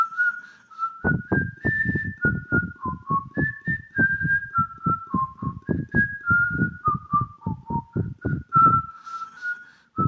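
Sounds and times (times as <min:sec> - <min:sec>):
person whistling a simple tune: 0:00.0 - 0:10.0
soft low thumps: 0:01.0 - 0:08.9.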